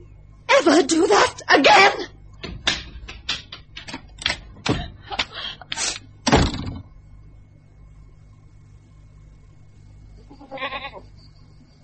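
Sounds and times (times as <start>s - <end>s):
speech: 0.6s - 2.1s
sharp rapid clattering knocks: 2.4s - 4.9s
short wavering goat bleat: 10.2s - 11.0s.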